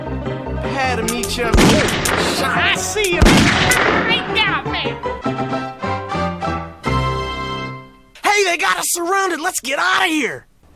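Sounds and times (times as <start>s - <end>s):
steady rhythmic music track: 0.3s - 7.9s
speech: 1.0s - 4.5s, 8.8s - 10.5s
gunshots and booming blasts in a video game shootout: 1.3s - 4.5s.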